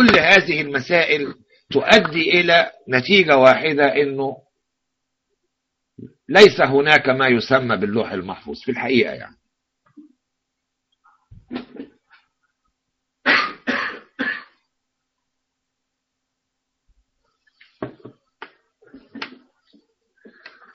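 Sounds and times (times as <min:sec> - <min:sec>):
speech: 0:00.0 - 0:04.4, 0:06.0 - 0:09.4, 0:11.5 - 0:11.8
person coughing: 0:11.5 - 0:12.0, 0:13.2 - 0:14.6.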